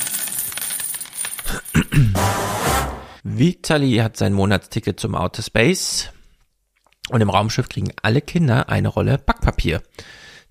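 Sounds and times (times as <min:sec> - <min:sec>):
coin dropping and spinning on a hard surface: 0:00.0 - 0:01.5
speech: 0:02.0 - 0:02.4, 0:03.2 - 0:06.2, 0:07.1 - 0:10.3.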